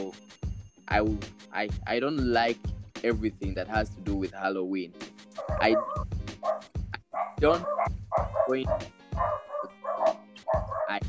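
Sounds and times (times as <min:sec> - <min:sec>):
speech: 0:00.0 - 0:06.6, 0:07.2 - 0:09.3
several dogs barking: 0:05.3 - 0:11.0.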